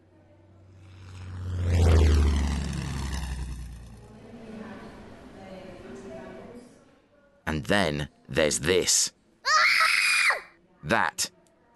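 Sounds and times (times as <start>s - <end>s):
P-51 Mustang propeller aircraft flying over Suffolk: 0.0s - 5.2s
speech: 7.6s - 9.2s, 10.8s - 11.4s.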